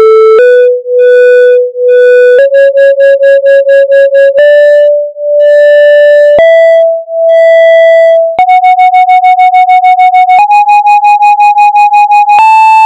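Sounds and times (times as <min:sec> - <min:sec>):
musical scales in just intonation and equal temperament: 0:00.2 - 0:12.7.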